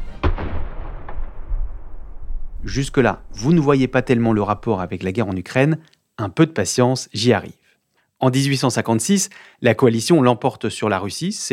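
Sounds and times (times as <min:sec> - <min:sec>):
12-pounder howitzer cannon firing: 0:00.0 - 0:04.9
speech: 0:02.6 - 0:07.6, 0:08.2 - 0:11.5.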